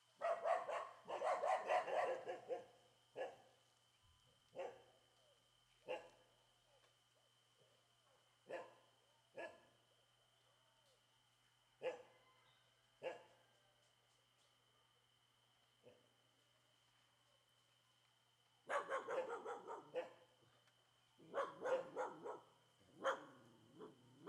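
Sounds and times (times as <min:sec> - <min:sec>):
dogs barking loudly in a quiet street: 0:00.2 - 0:03.4, 0:18.7 - 0:20.2, 0:21.2 - 0:24.2.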